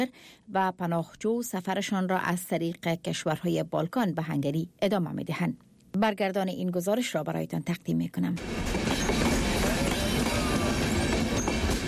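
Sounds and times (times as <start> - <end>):
speech: 0.0 - 9.1
train rumbling along the rails with a low roar: 8.4 - 11.8.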